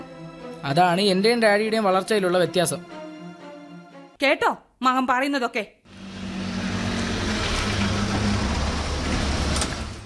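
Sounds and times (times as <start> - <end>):
speech: 0.6 - 3.0, 4.2 - 5.8
arriving vehicle low engine rumble: 5.9 - 10.0
broadband road noise: 5.9 - 10.0.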